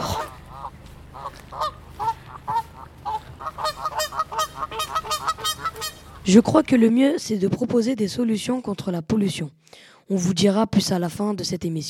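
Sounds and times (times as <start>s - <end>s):
passing geese honking: 0.0s - 6.6s
speech: 6.3s - 11.8s.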